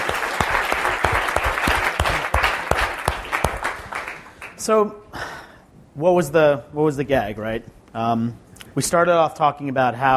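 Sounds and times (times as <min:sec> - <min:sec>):
audience clapping for storytellers: 0:00.0 - 0:04.7
speech: 0:04.7 - 0:05.0, 0:06.0 - 0:10.1.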